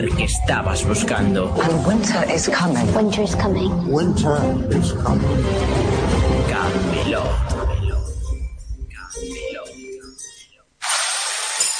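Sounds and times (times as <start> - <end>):
speech: 0.0 - 7.8
power drilling from renovation work: 10.8 - 11.7.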